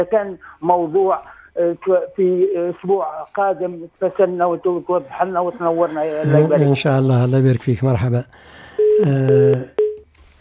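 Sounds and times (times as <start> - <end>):
speech: 0.0 - 9.8
telephone line tone as a new caller connects to a call-in line: 8.8 - 10.1.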